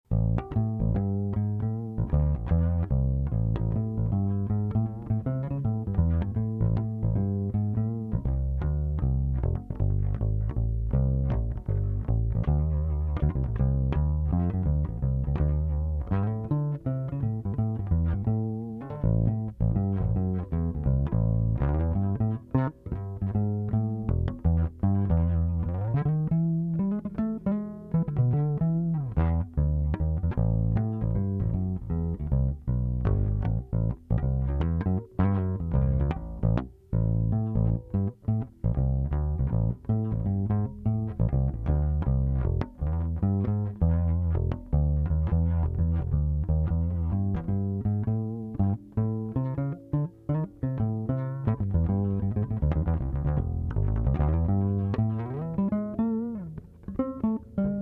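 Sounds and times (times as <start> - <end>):
bass guitar through a pickup: 0.0 - 57.8.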